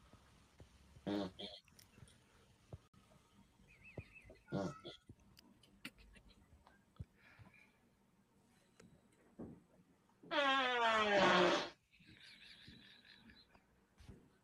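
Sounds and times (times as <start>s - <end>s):
loud buzzy fart with downward sliding pitch: 1.0s - 1.5s, 10.4s - 11.8s.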